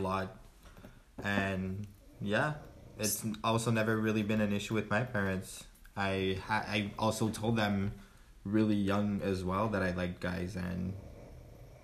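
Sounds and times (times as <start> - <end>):
speech: 0.0 - 0.4, 1.2 - 11.1
dog snoring: 1.8 - 4.0, 10.6 - 11.8.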